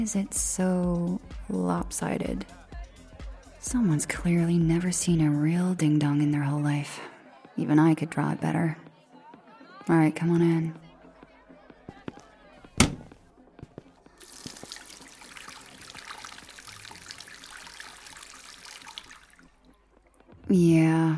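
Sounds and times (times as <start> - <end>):
speech: 0.0 - 2.6, 3.6 - 8.8, 9.9 - 10.8, 20.5 - 20.8
tap water running while someone washes with soap: 14.1 - 19.7.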